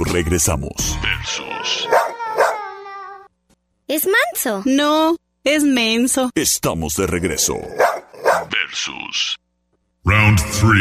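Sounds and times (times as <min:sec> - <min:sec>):
speech: 0:00.1 - 0:01.8, 0:04.0 - 0:09.4, 0:10.0 - 0:10.7
dog howling: 0:01.5 - 0:03.2
dog barking: 0:01.8 - 0:02.7, 0:07.7 - 0:08.5.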